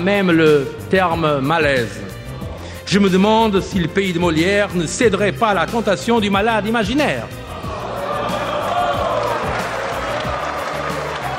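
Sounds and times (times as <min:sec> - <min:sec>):
speech: 0:00.0 - 0:02.0, 0:02.9 - 0:07.4
deputies applauding in parliament: 0:07.6 - 0:11.3
deputies shouting in parliament: 0:07.6 - 0:11.3.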